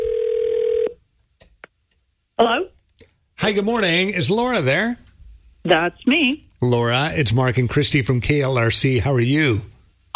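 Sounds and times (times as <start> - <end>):
telephone dial tone: 0.0 - 0.9
speech: 2.4 - 2.8, 3.4 - 5.0, 5.6 - 10.1.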